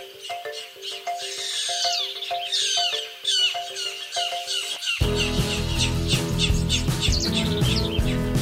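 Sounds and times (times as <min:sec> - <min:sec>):
birdsong of bright repeated chirps and trills: 0:00.0 - 0:08.4
loud full burst of music: 0:05.0 - 0:08.4.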